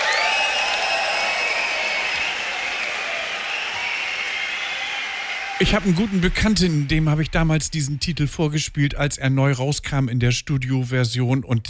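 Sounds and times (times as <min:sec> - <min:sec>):
faint cheers and whistles: 0:00.0 - 0:07.3
applause from a large live concert audience: 0:00.0 - 0:08.7
speech: 0:05.6 - 0:11.6.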